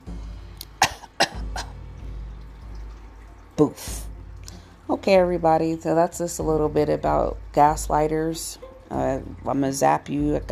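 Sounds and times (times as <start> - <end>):
people coughing: 0.8 - 1.7
speech: 3.6 - 4.1, 4.9 - 10.4.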